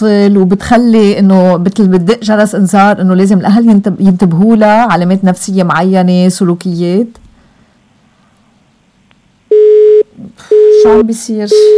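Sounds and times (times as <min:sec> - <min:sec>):
speech: 0:00.0 - 0:07.2, 0:10.2 - 0:11.7
busy tone after a phone line is cut off: 0:09.5 - 0:11.7.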